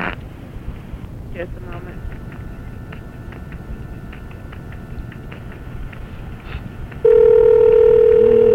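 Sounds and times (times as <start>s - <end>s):
speech: 1.4s - 2.3s
steady telephone line tone while placing a call: 7.0s - 8.5s.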